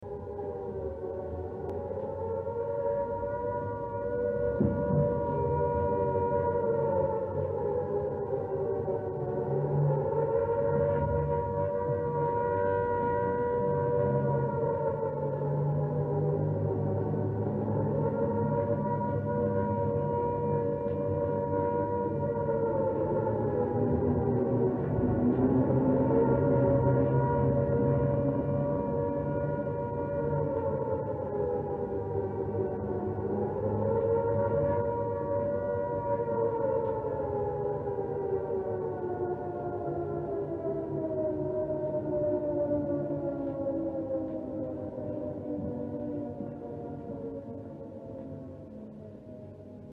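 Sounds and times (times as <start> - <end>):
WW2 British air raid siren: 0.0 - 49.9.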